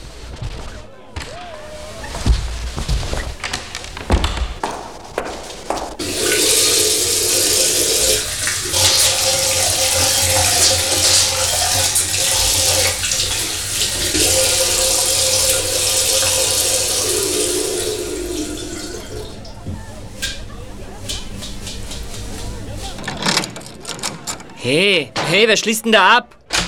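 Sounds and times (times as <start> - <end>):
knocks and handling sounds: 0.0 - 6.8, 21.1 - 26.6
tap water running while hands are washed under it: 4.0 - 20.4
speech: 25.4 - 26.4.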